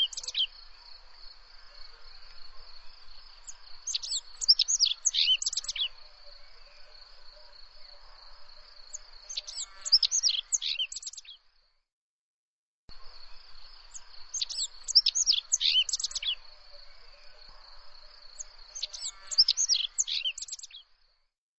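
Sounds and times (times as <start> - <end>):
bird song of rapid varied high twittering notes with sweeping chirps: 3.9 - 6.0, 9.3 - 11.3, 14.4 - 16.4, 18.8 - 20.8.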